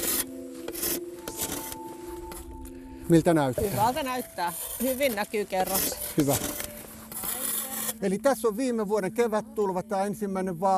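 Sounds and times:
saw blade scraping a sediment core: 0.0 - 2.4, 3.6 - 8.2
speech: 3.1 - 6.7, 8.0 - 10.7.

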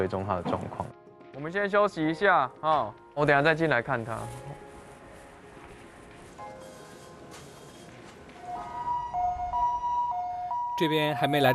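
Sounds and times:
speech: 0.0 - 4.6, 10.8 - 11.5
ambulance siren wailing with alternating high and low tones: 8.4 - 11.5.

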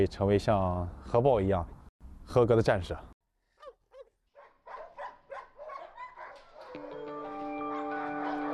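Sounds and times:
speech: 0.0 - 3.1
military working dog barking during training: 3.6 - 6.8, 7.7 - 8.5.

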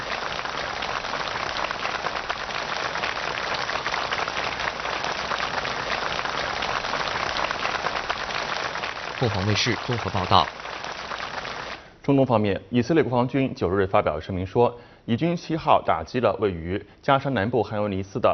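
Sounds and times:
crowd of accompanying staff and North Korean trainees applauding at a tree-planting monument: 0.0 - 11.9
speech: 9.2 - 10.6, 12.1 - 18.3.

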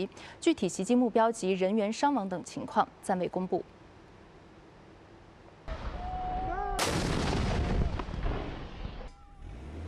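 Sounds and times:
speech: 0.0 - 3.8
artillery fire during ground fighting in Taiz province, southwestern Yemen: 6.8 - 9.2.

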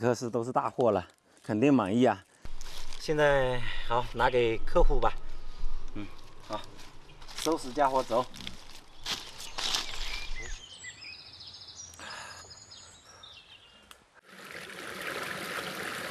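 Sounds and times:
speech: 0.0 - 2.3, 3.0 - 5.2, 6.0 - 6.8, 7.4 - 8.6
bright birdlike chirps: 4.1 - 13.9
light rustling: 5.1 - 10.6
mountain forest stream flowing: 14.2 - 16.0.

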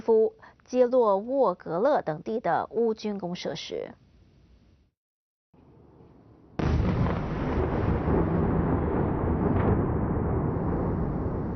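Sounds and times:
speech: 0.1 - 4.0
ballistic missile explosion: 5.7 - 11.5.

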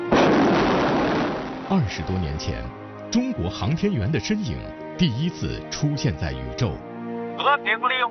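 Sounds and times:
firework burst: 0.1 - 1.7
speech: 1.7 - 6.9, 7.4 - 8.0.

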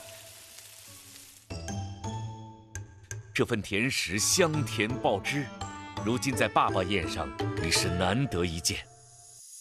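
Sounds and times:
egg-battered pork fat pieces deep-frying in hot oil: 0.0 - 1.7
speech: 3.4 - 8.9.

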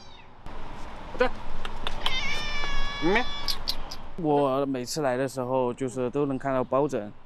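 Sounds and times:
cat meowing: 0.0 - 0.3, 1.9 - 3.8
speech: 1.2 - 1.4, 3.0 - 3.6, 4.2 - 7.2.

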